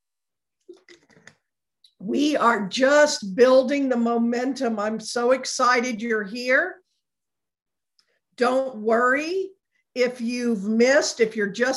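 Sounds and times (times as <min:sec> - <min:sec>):
person gulping and swallowing water: 0:00.6 - 0:01.4
speech: 0:02.0 - 0:06.8, 0:08.4 - 0:11.7.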